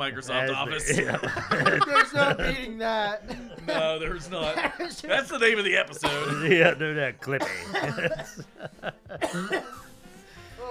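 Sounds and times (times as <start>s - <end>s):
speech: 0.0s - 9.8s
laughter: 0.5s - 5.3s, 6.0s - 9.5s
person coughing: 6.0s - 6.7s, 7.4s - 8.5s, 9.2s - 9.9s.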